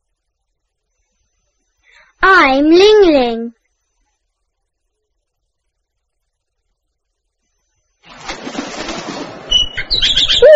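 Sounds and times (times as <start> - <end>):
speech: 2.2 - 3.6
bird wings flapping: 8.0 - 10.4
bird chirping and tweeting: 9.5 - 10.5.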